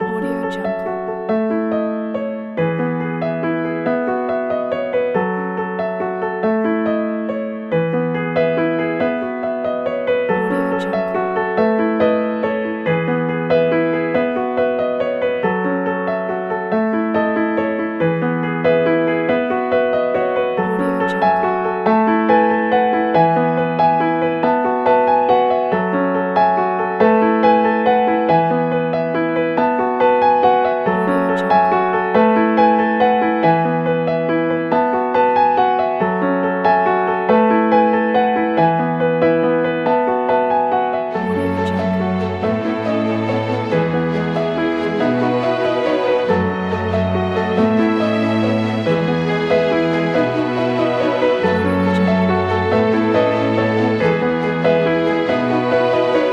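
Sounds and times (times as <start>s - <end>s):
modern classical piano: 0.0s - 56.3s
modern classical strings: 41.1s - 56.3s.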